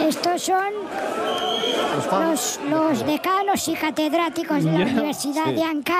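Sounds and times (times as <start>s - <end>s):
speech: 0.1s - 5.9s
large crowd screaming and cheering at an airport arrival: 0.9s - 2.3s
laughter: 4.5s - 5.5s.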